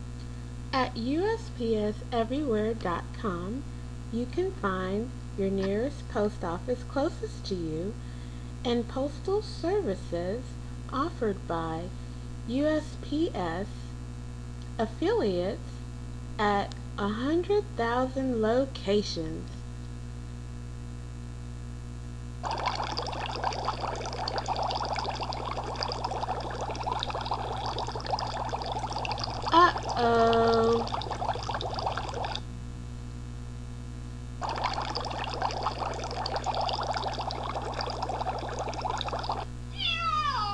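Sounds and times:
speech: 0.7s - 13.8s, 14.8s - 15.7s, 16.4s - 19.6s
water pouring in a loud hissing stream during a cat's bath: 22.4s - 32.4s, 34.4s - 39.5s
cat meowing while being bathed: 39.8s - 40.5s.

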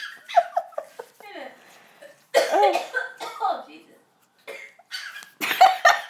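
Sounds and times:
people talking: 1.2s - 1.6s, 2.6s - 4.1s
coughing: 2.3s - 3.5s, 4.5s - 5.7s.

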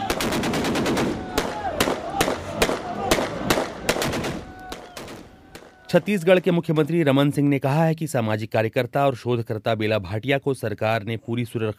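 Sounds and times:
faint shouting voices: 0.0s - 0.2s, 1.0s - 6.5s
celebratory automatic gunfire from army weapons: 0.0s - 5.7s
speech: 5.9s - 11.7s.

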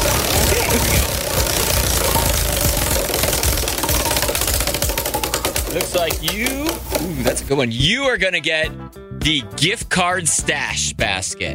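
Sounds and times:
spinning prize wheel clicking: 0.0s - 7.4s
loud steady broadband wash: 0.0s - 7.5s
speech: 5.8s - 11.5s.

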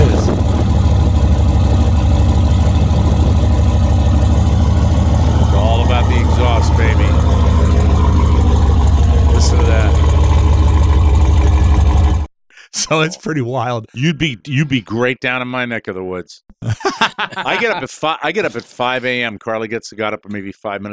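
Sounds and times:
modified Mercedes S-Class car engine idling: 0.0s - 12.3s
speech: 12.9s - 20.9s
laughter: 16.6s - 18.8s.

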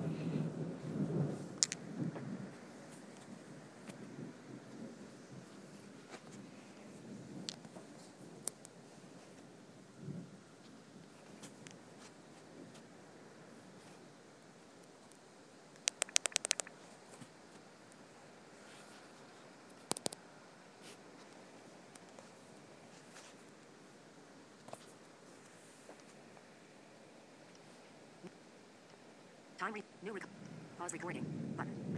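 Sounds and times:
deep rolling thunder during a thunderstorm: 0.0s - 5.8s, 30.5s - 31.9s
steady rain: 0.0s - 31.9s
speech: 29.6s - 31.9s.

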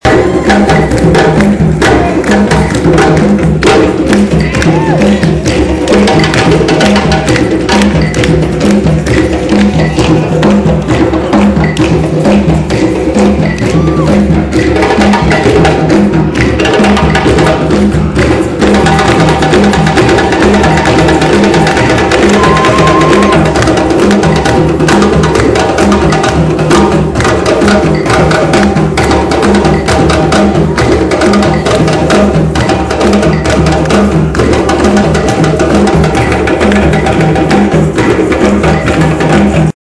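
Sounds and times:
drum dance: 0.0s - 39.8s.

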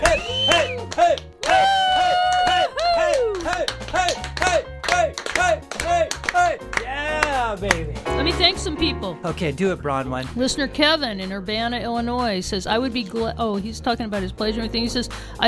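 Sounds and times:
steady rhythmic hand claps keeping time: 0.0s - 8.3s
loud upbeat music track with bright melody and pulsing bass line: 0.0s - 15.4s
speech: 8.8s - 15.4s.

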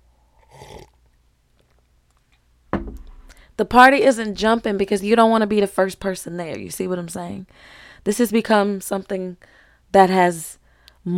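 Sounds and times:
slurping sip of hot coffee: 0.4s - 1.0s
speech: 3.6s - 11.1s.

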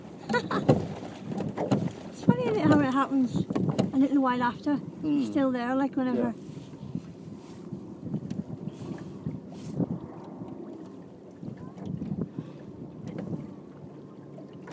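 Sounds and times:
headwind rushing over the microphone: 0.0s - 5.2s, 6.2s - 10.8s, 11.4s - 13.6s
low water noise: 0.0s - 14.7s
speech: 0.3s - 0.8s, 2.6s - 6.5s.

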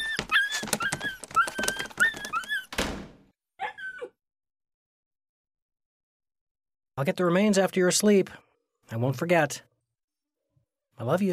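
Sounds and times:
dog yelping in short high-pitched cries: 0.0s - 2.7s, 3.6s - 4.2s
scuffling thumps: 0.0s - 3.2s
speech: 7.0s - 9.7s, 11.0s - 11.3s.

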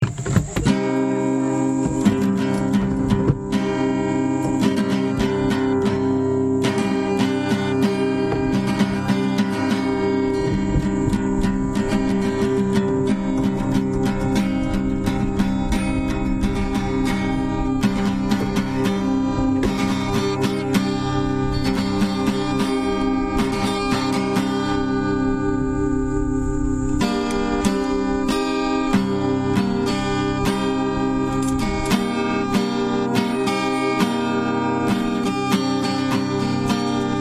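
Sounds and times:
guitar instrumental in minor: 0.0s - 37.1s.

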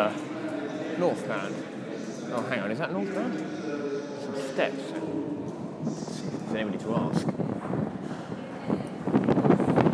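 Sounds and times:
speech: 1.0s - 7.4s
wind blowing across the microphone outdoors: 5.0s - 9.9s.

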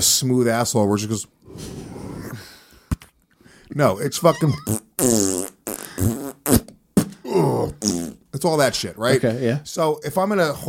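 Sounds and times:
speech: 0.0s - 1.8s, 3.7s - 5.2s, 8.4s - 10.6s
person's mouth imitating farting: 4.5s - 6.7s, 7.4s - 8.3s.

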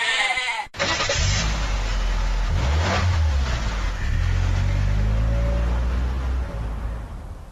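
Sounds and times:
goat bleating: 0.0s - 0.8s
car engine revving and accelerating: 0.8s - 7.5s.

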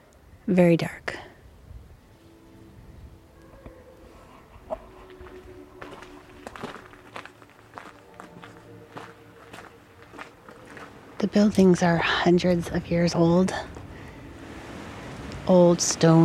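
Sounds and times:
speech: 0.5s - 1.2s, 11.3s - 13.7s, 15.5s - 16.2s
footsteps walking outside at night on a street of old stone buildings: 3.4s - 15.4s.

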